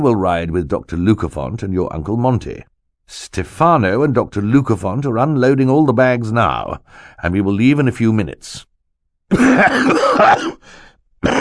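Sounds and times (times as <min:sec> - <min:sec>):
speech: 0:00.0 - 0:08.7, 0:09.3 - 0:11.4
man coughing into a handkerchief: 0:09.3 - 0:10.6, 0:11.2 - 0:11.4.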